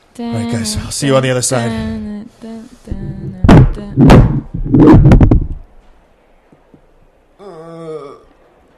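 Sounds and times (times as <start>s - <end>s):
voice: 0.2s - 4.2s
speech: 0.2s - 5.0s
heavy thuds: 2.9s - 6.9s.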